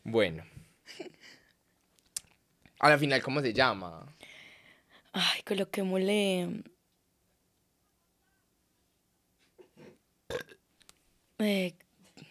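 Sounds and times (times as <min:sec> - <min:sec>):
speech: 0:00.1 - 0:01.4, 0:02.8 - 0:04.3, 0:05.2 - 0:06.7, 0:11.4 - 0:11.8
short throaty sounds: 0:09.6 - 0:10.6
loud drawn-out burp: 0:09.8 - 0:10.6.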